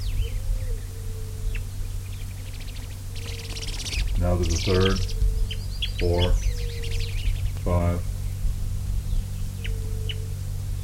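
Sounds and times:
birds calling to each other: 0:00.0 - 0:10.8
steady low hum: 0:00.0 - 0:10.8
speech: 0:04.2 - 0:05.1, 0:06.0 - 0:06.5, 0:07.6 - 0:08.1.

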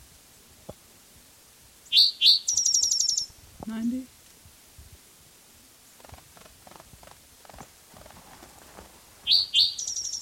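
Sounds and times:
bird singing: 0:01.8 - 0:03.3, 0:09.2 - 0:10.2.

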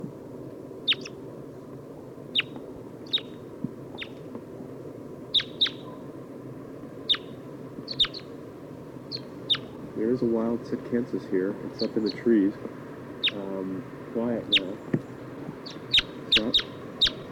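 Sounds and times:
low background hum: 0:00.0 - 0:17.3
Red Crossbill type 2 kip calls: 0:00.8 - 0:01.2, 0:02.3 - 0:04.4, 0:05.3 - 0:06.1, 0:07.0 - 0:08.4, 0:09.1 - 0:17.3
speech: 0:10.2 - 0:12.8, 0:14.2 - 0:15.0.

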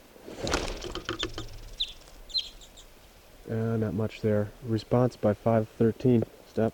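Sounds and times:
released bird fluttering wingbeats: 0:00.0 - 0:05.2
released bird short high chirping calls: 0:00.0 - 0:06.7
speech: 0:03.5 - 0:06.7.

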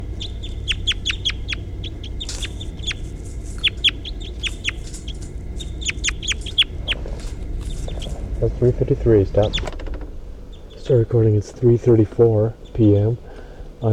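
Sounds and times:
crossbill chip notes: 0:00.0 - 0:09.6
low rumble: 0:00.0 - 0:13.9
speech: 0:08.4 - 0:09.8, 0:10.9 - 0:13.9.

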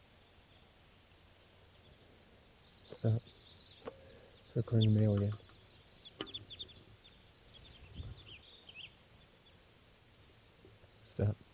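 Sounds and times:
bird clucking calls: 0:02.6 - 0:09.6
speech: 0:03.0 - 0:03.4, 0:04.5 - 0:05.4, 0:11.2 - 0:11.4.

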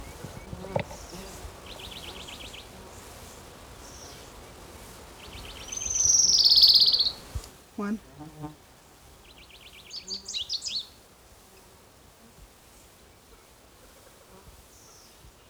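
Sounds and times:
orange-crowned warbler song: 0:00.0 - 0:04.4, 0:05.1 - 0:07.5, 0:09.2 - 0:11.0
faint noise: 0:00.0 - 0:15.4
speech: 0:07.8 - 0:08.6.

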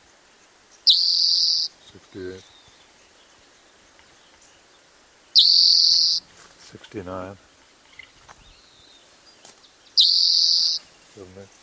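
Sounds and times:
speech: 0:02.1 - 0:02.6, 0:06.7 - 0:07.5, 0:11.2 - 0:11.6
bird singing a high whistle-like note: 0:05.4 - 0:06.2, 0:10.0 - 0:10.8.

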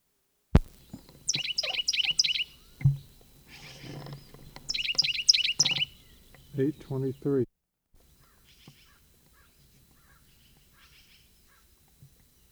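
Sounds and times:
dull thump: 0:00.6 - 0:01.8, 0:02.6 - 0:05.0
bird chirping inside a barn: 0:00.6 - 0:07.4, 0:08.0 - 0:12.5
speech: 0:06.6 - 0:07.6.

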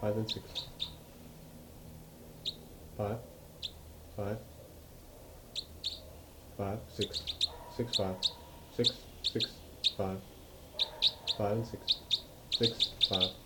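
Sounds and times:
speech: 0:00.0 - 0:00.9, 0:03.0 - 0:03.3, 0:04.2 - 0:04.5, 0:06.6 - 0:10.3, 0:11.4 - 0:12.0, 0:12.6 - 0:13.4
birds chirping: 0:00.0 - 0:01.2, 0:02.3 - 0:13.4.

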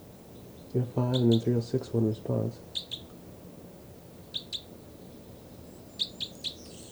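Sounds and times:
steady low hiss: 0:00.0 - 0:06.9
bird chirps around 4 kHz pitch: 0:00.6 - 0:01.9, 0:02.6 - 0:03.1, 0:04.2 - 0:04.7, 0:05.7 - 0:06.9
bird chittering calls: 0:00.6 - 0:03.1, 0:04.2 - 0:04.8, 0:05.8 - 0:06.9
speech: 0:00.7 - 0:03.0.

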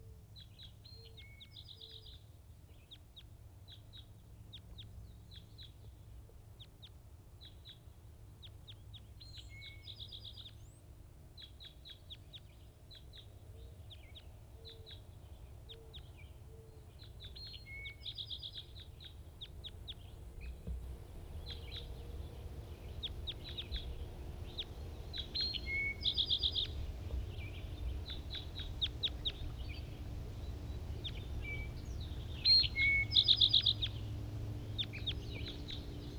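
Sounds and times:
wild bird calling with short high chirps and trills: 0:17.0 - 0:36.1
steady low rumble of noise: 0:19.5 - 0:36.1.

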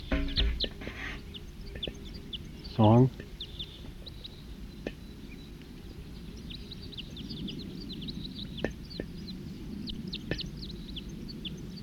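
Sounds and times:
wild birds chirping: 0:00.0 - 0:11.8
speech: 0:02.8 - 0:03.3.

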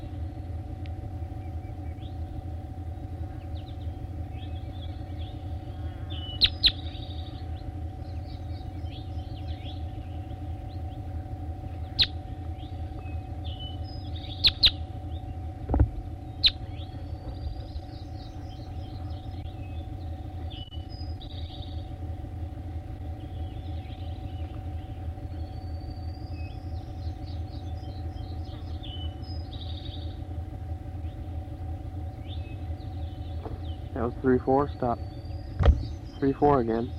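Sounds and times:
loud low rumble: 0:00.0 - 0:36.9
bird chirps and short whistled calls: 0:03.3 - 0:11.0, 0:11.8 - 0:15.3, 0:16.3 - 0:21.9, 0:23.2 - 0:30.2, 0:32.1 - 0:36.9
speech: 0:34.2 - 0:35.1, 0:36.2 - 0:36.9.

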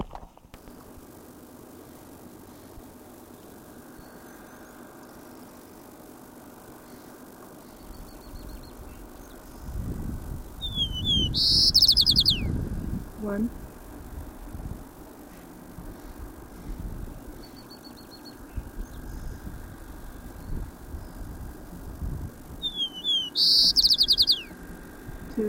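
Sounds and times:
low engine-like rumble: 0:00.6 - 0:25.4
white-crowned sparrow singing: 0:07.6 - 0:09.8, 0:10.6 - 0:12.6, 0:17.3 - 0:19.6, 0:22.6 - 0:24.6
speech: 0:13.2 - 0:13.6.

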